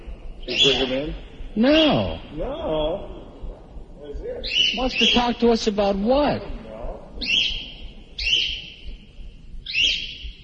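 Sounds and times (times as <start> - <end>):
faint murmur: 0.0 - 10.4
bird squawking frantically: 0.5 - 2.2, 4.4 - 5.4, 7.2 - 8.8, 9.7 - 10.3
speech: 0.5 - 3.2, 4.4 - 6.6.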